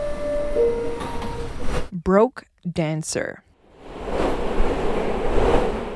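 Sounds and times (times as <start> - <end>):
subway train rumbling arriving at station: 0.0 - 1.9, 3.6 - 5.9
speech: 0.6 - 0.8, 2.1 - 3.5.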